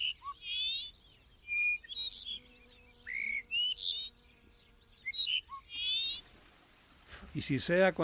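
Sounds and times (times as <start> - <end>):
Dupont's lark singing thin fluty whistles: 0.0 - 2.3, 5.0 - 7.5
speech: 7.4 - 8.0.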